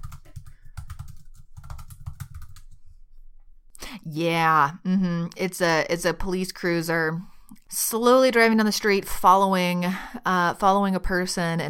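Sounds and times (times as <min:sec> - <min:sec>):
typing on a computer keyboard during an online search: 0:00.0 - 0:02.8
speech: 0:03.9 - 0:11.6.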